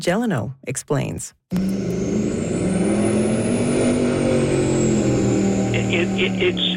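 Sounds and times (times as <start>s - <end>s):
speech: 0.0s - 1.9s, 5.9s - 6.7s
motorboat engine roaring on a lake in the Shuswap: 1.5s - 6.7s
rising and falling high-pitched whine: 1.6s - 6.7s.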